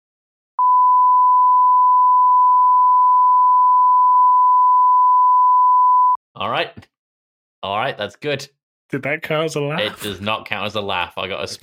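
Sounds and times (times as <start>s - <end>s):
high-pitched censor bleep tone: 0.6s - 6.2s
speech: 6.4s - 7.0s, 7.6s - 11.6s.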